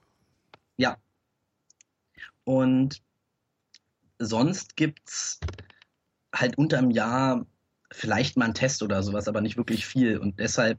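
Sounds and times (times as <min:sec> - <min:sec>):
speech: 0:00.8 - 0:01.0, 0:02.2 - 0:03.1, 0:04.2 - 0:05.6, 0:06.4 - 0:10.7
keyboard taps: 0:05.4 - 0:05.9.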